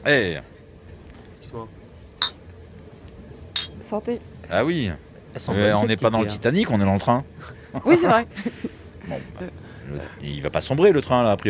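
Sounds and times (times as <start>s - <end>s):
speech: 0.0s - 0.5s, 1.4s - 2.3s, 3.9s - 11.4s
beer glasses clinking in a toast: 2.2s - 2.4s, 3.6s - 3.8s.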